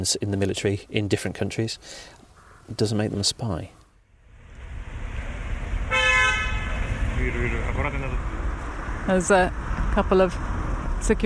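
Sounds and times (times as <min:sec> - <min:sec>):
speech: 0:00.0 - 0:03.8, 0:07.2 - 0:08.4, 0:09.0 - 0:11.2
street rumble: 0:00.0 - 0:11.2
car engine of an ambassador's car: 0:04.0 - 0:11.2
short car horn toot: 0:05.9 - 0:06.7.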